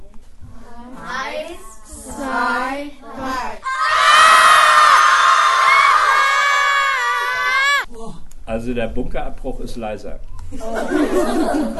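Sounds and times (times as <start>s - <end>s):
crowd of children screaming as loud as they can: 3.7s - 7.9s
speech: 8.7s - 11.7s
laughter: 10.6s - 11.7s.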